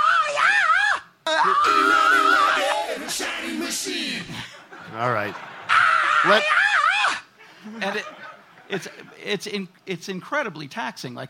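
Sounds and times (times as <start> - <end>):
male singer's high piercing sung shriek with ringing overtone: 0.0 - 3.0, 5.7 - 7.3
laughter: 4.1 - 9.2
speech: 5.0 - 5.5, 6.2 - 6.6, 7.7 - 11.2.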